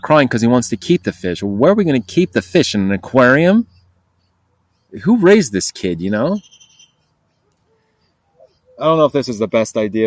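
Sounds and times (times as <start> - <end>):
speech: 0.0 - 3.7, 4.9 - 6.6, 8.8 - 10.0
young blackbirds chirping outdoors: 0.1 - 10.0.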